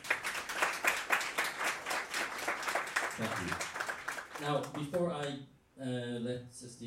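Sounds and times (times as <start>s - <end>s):
audience applause: 0.0s - 5.0s
speech: 3.2s - 3.7s, 4.4s - 6.8s.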